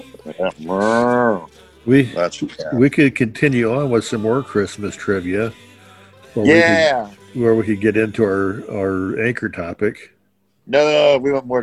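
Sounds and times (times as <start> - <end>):
speech: 0.2 - 5.7, 6.3 - 11.6
low grunting: 0.3 - 1.5
cow mooing: 0.4 - 1.5.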